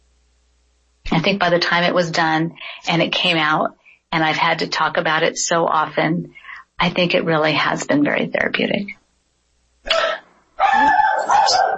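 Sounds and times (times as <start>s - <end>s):
speech: 1.2s - 9.0s
dogs barking: 10.6s - 11.7s.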